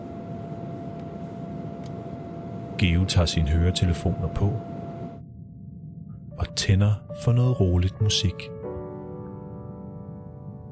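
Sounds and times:
faint high tonal hum: 0.0 - 10.7
steady dense low rumble: 2.6 - 8.5
speech: 2.8 - 4.7, 6.6 - 8.6.

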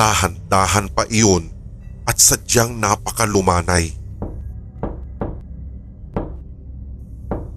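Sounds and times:
speech: 0.0 - 4.0
low rumble: 0.0 - 7.5
fist knocking on a wooden door: 4.2 - 5.4, 6.2 - 6.4, 7.3 - 7.5.

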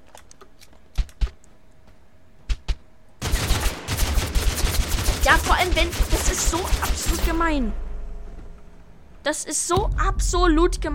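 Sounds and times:
video game gunfire with single shots and rapid bursts: 3.2 - 7.7
speech: 5.7 - 7.8, 9.2 - 10.9.

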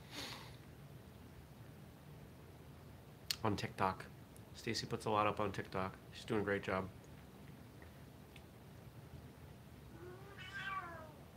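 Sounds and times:
low hum: 0.0 - 11.3
speech: 3.4 - 7.0
female cat meowing: 9.9 - 11.3.

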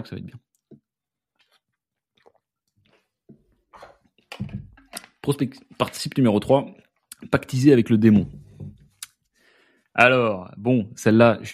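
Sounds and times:
speech: 0.0 - 0.5, 5.2 - 8.4, 10.0 - 11.5
slurp and gulp: 1.4 - 4.3
small sip of a drink: 1.4 - 5.9.

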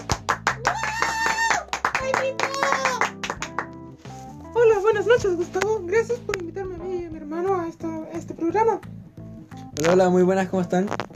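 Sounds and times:
sharp evenly spaced hand claps: 0.0 - 3.9
speech: 5.0 - 9.0, 9.8 - 11.1.

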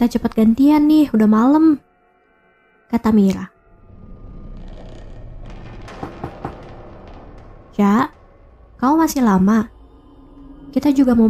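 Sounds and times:
speech: 0.0 - 1.9, 2.9 - 3.5, 7.8 - 8.2, 8.8 - 9.8, 10.7 - 11.2
knocking on a bathroom door: 5.8 - 8.4.

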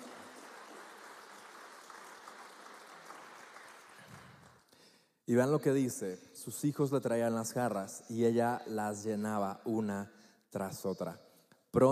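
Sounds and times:
crowd applauding: 0.0 - 4.7
speech: 5.3 - 11.8.

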